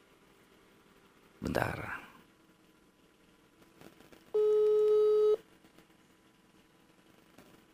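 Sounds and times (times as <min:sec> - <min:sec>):
speech: 0:01.4 - 0:02.0
electronic telephone ringback tone: 0:04.4 - 0:05.4.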